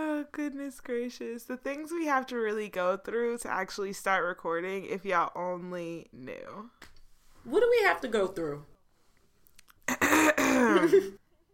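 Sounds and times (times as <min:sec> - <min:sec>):
speech: 0:00.3 - 0:08.7, 0:10.1 - 0:11.2
harsh gravelly throat clearing: 0:09.9 - 0:11.2.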